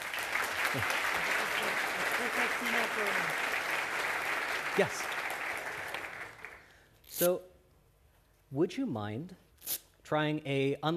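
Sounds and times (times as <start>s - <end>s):
crowd applauding: 0.0s - 6.8s
speech: 0.7s - 1.0s, 2.2s - 3.7s, 4.8s - 5.1s, 7.2s - 7.5s, 8.5s - 9.4s, 10.1s - 10.9s.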